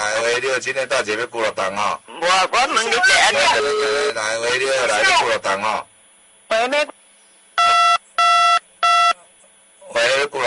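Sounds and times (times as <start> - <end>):
speech: 0.4 - 5.9, 6.5 - 7.0
telephone dialing tones for a phone call: 7.6 - 9.2.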